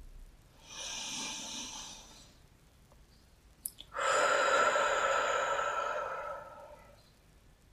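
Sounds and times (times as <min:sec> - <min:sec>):
slow breathing: 0:00.6 - 0:02.4, 0:03.9 - 0:07.2.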